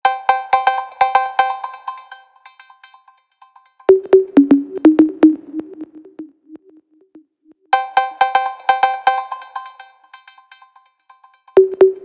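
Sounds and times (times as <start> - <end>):
Nokia trill ringtone: 0.0 - 4.6, 7.8 - 11.9.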